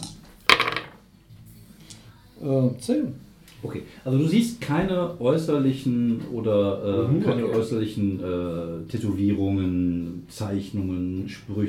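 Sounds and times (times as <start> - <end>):
dice tumbling across a tabletop: 0.5 - 1.0
speech: 2.4 - 11.6.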